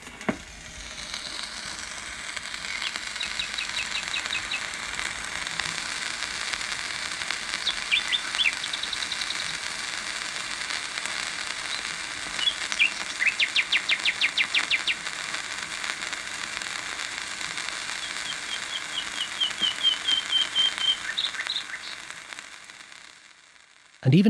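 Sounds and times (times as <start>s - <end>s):
hiss and crackle of an old gramophone record: 0.0s - 24.2s
nightingale singing trills, whistles and chirps on an old gramophone record: 2.7s - 4.7s, 7.6s - 9.6s, 11.6s - 15.0s, 18.0s - 22.0s.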